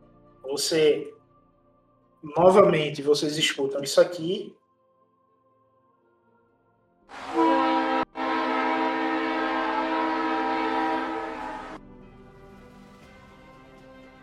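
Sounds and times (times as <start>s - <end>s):
speech: 0.5s - 1.2s, 2.2s - 4.6s
loud sustained train horn blasting: 7.1s - 11.8s.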